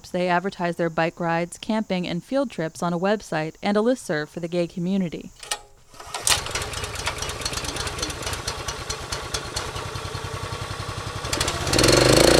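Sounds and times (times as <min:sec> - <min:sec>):
speech: 0:00.1 - 0:05.5
log splitter small gas engine starting and revving: 0:06.0 - 0:12.3.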